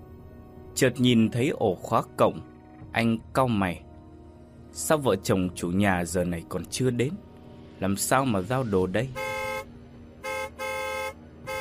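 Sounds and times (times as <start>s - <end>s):
speech: 0.8s - 3.8s, 4.7s - 9.3s
approaching Mazda car horn honking from behind: 9.1s - 11.5s.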